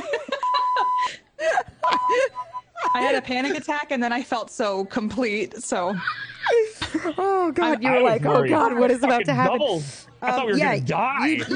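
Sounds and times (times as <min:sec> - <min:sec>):
people laughing: 0:00.0 - 0:03.7, 0:05.9 - 0:09.2
steady high electronic beeps from a wrongly pressed button: 0:00.4 - 0:01.0, 0:01.8 - 0:03.2
speech: 0:03.0 - 0:11.5.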